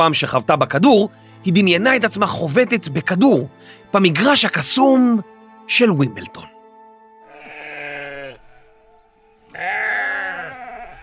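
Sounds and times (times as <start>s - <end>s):
speech: 0.0s - 6.5s
sheep bleating: 7.2s - 8.9s, 9.5s - 11.0s.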